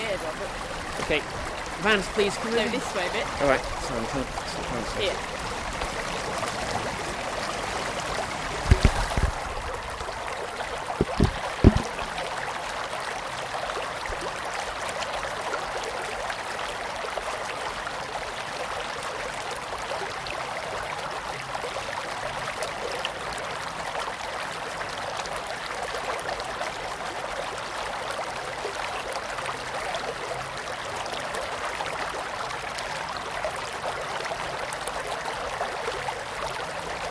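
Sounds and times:
steady stream babbling and splashing: 0:00.0 - 0:37.0
speech: 0:00.4 - 0:05.4
soft knocks or footsteps: 0:11.0 - 0:12.2.

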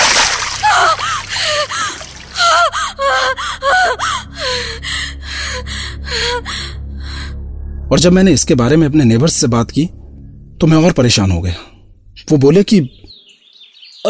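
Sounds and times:
bucket of water poured over a woman: 0:00.0 - 0:02.4
water sloshing: 0:00.0 - 0:04.2
woman gasping and sputtering: 0:00.5 - 0:07.3
speech: 0:07.9 - 0:10.0, 0:10.6 - 0:11.7, 0:12.3 - 0:13.1.

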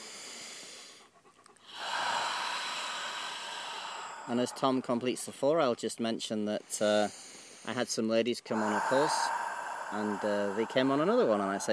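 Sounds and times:
slow deep breath in during breathing exercise: 0:00.0 - 0:05.0, 0:06.8 - 0:07.7, 0:08.5 - 0:11.7
speech: 0:04.3 - 0:11.7.

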